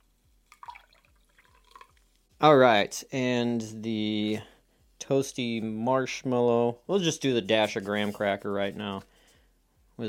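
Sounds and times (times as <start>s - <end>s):
chocolate-flavoured soda pouring into a glass: 0.5s - 2.0s
bright drips trickling: 0.5s - 2.1s
speech: 2.4s - 9.1s.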